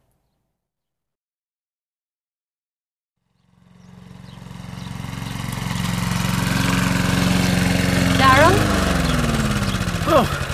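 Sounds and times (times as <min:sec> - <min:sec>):
petrol lawn mower engine droning: 0:03.2 - 0:10.5.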